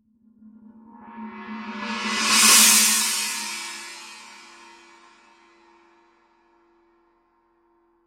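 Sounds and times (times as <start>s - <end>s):
18-inch china cymbal roll: 1.7s - 5.7s.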